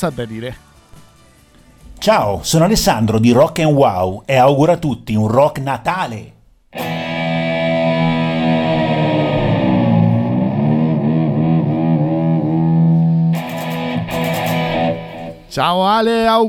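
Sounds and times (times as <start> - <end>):
speech: 0.0 - 0.7, 2.0 - 6.9, 15.6 - 16.4
loud distorted electric guitar with heavy effects: 6.8 - 15.6.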